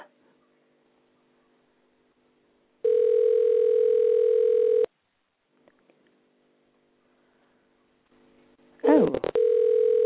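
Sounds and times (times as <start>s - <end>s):
faint low hum: 0.0s - 10.0s
telephone ringing tone on an outgoing call: 2.8s - 4.9s, 9.3s - 10.0s.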